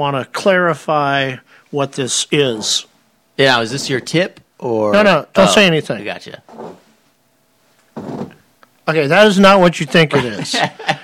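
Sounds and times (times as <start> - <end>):
speech: 0.0 - 6.8, 8.9 - 11.0
chair cushion insert squeaks: 3.5 - 4.3, 6.4 - 6.9, 7.9 - 8.4
laughter: 9.9 - 11.0.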